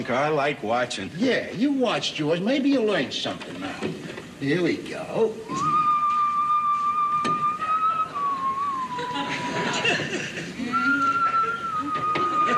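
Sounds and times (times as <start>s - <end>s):
speech: 0.0s - 5.9s
murmur of noise: 0.0s - 12.5s
man whistling a tune absently: 5.5s - 9.6s, 10.7s - 12.5s
laughter: 8.7s - 12.5s.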